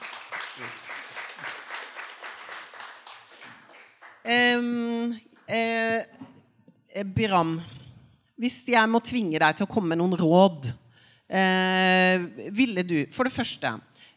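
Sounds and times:
small audience applause: 0.0s - 4.3s
speech: 0.3s - 0.9s, 4.3s - 6.2s, 7.0s - 7.8s, 8.4s - 14.1s.

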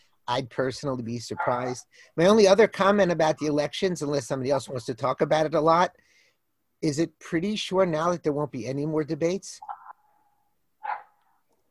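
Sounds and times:
speech: 0.3s - 6.0s, 6.8s - 9.8s
dog barking: 1.4s - 1.7s, 10.8s - 11.2s
dog whining faintly: 10.8s - 11.2s.

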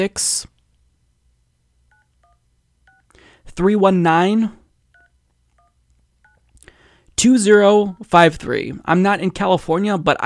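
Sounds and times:
speech: 0.0s - 0.5s, 3.6s - 4.6s, 7.2s - 10.2s
telephone keypad tones dialing an office number: 1.9s - 3.1s, 4.9s - 6.5s.

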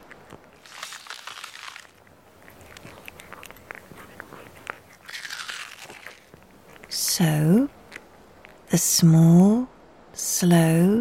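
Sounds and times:
crunching and munching of chewing leaves: 0.0s - 8.7s
speech: 7.2s - 7.8s, 8.7s - 9.7s, 10.4s - 11.0s.

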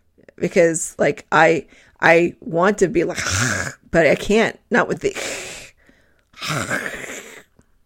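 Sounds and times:
speech: 0.4s - 5.5s, 6.4s - 7.1s
faint breathy lead-in: 1.7s - 2.0s, 5.2s - 6.3s
guttural throat-clearing rasp imitating a consonant: 3.2s - 3.9s, 6.4s - 7.5s.

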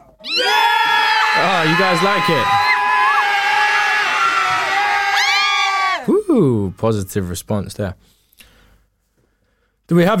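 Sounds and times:
crowd cheering and whooping in response to a track: 0.2s - 6.7s
speech: 1.6s - 2.7s, 6.3s - 8.5s, 9.9s - 10.1s.

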